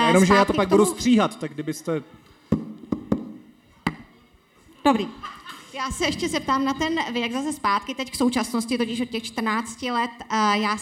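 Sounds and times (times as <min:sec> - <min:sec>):
speech: 0:00.1 - 0:02.3, 0:04.8 - 0:10.8
microphone being set down on a hard surface: 0:02.5 - 0:03.4.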